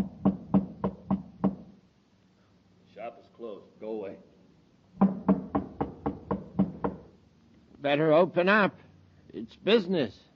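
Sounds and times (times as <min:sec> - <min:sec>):
knocking on a door: 0:00.0 - 0:01.7, 0:05.0 - 0:07.1
speech: 0:07.8 - 0:10.3.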